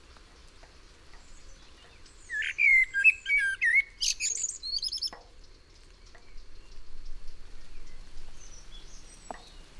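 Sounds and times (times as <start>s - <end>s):
Common Blackbird song phrase of whistles and twittered flourish: 1.8s - 5.2s.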